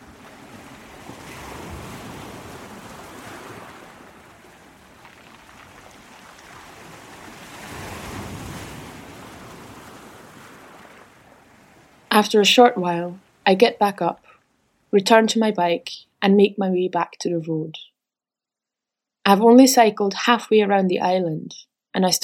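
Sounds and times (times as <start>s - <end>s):
wind noise: 0.0s - 12.0s
waves washing in and drawing back over a pebble beach: 0.0s - 12.1s
steady roar of the sea: 0.0s - 13.5s
speech: 12.2s - 14.3s, 14.9s - 17.9s, 19.2s - 22.2s.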